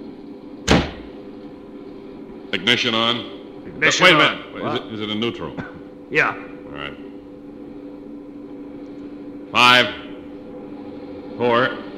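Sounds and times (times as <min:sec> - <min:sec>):
steady hum: 0:00.0 - 0:11.9
door slamming shut: 0:00.7 - 0:01.0
speech: 0:02.5 - 0:07.0, 0:09.5 - 0:10.0, 0:11.4 - 0:11.8.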